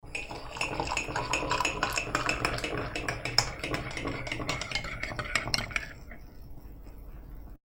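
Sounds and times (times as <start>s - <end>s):
coffee being brewed: 0.0s - 7.6s.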